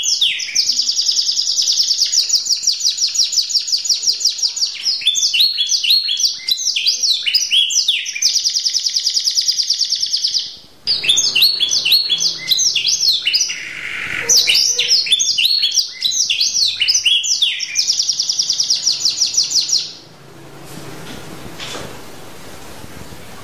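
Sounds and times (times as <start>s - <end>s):
champion canary singing: 0.0s - 20.2s.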